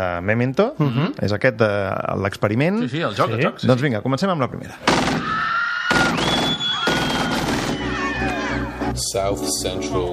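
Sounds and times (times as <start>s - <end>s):
speech: 0.0s - 5.4s, 9.0s - 10.1s
gunfire volleys from a movie soundtrack: 4.9s - 7.8s.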